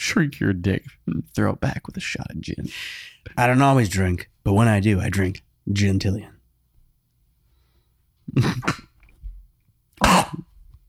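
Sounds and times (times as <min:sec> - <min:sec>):
speech: 0:00.1 - 0:06.4, 0:08.3 - 0:08.9
person coughing: 0:08.3 - 0:09.0, 0:10.0 - 0:10.6.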